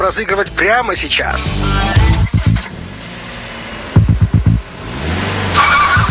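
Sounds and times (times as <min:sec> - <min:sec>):
speech: 0:00.1 - 0:02.1
car engine rumbling and revving, driving away: 0:01.4 - 0:06.0.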